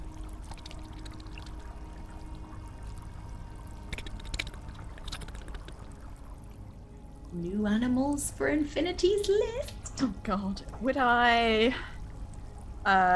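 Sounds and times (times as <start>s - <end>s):
pounding rushing water: 0.0s - 8.6s
speech: 7.4s - 11.9s, 12.8s - 13.1s.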